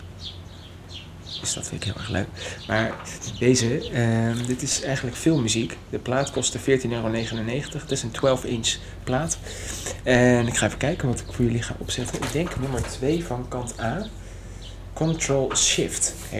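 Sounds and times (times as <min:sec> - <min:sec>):
birds chirping and tweeting on a sunny spring day: 0:00.0 - 0:16.3
speech: 0:01.4 - 0:14.2, 0:15.0 - 0:16.3.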